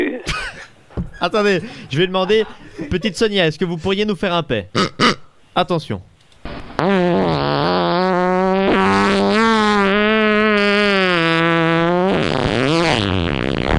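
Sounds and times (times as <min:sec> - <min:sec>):
speech: 0:01.2 - 0:06.1
fart: 0:06.5 - 0:13.7.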